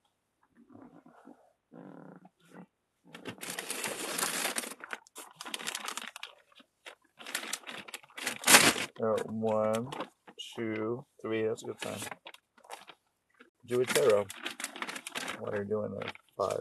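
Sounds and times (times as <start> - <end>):
plastic bag crinkling and crumpling: 3.2 - 10.1, 11.8 - 13.0, 13.7 - 16.6
speech: 9.0 - 12.2, 13.7 - 14.5, 15.4 - 16.6.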